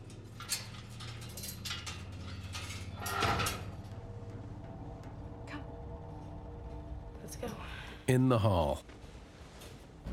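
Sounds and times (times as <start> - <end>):
metal door lock and latch clicking: 0.0 - 4.0
speech: 8.1 - 8.9.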